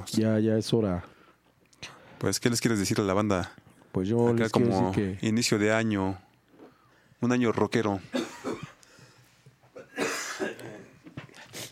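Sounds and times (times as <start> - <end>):
speech: 0.0 - 1.2, 1.8 - 6.2, 7.2 - 8.2
faint breathing: 1.0 - 2.2, 6.6 - 7.2, 8.8 - 9.5
person with a persistent cough coughing: 8.1 - 8.8, 9.8 - 11.1.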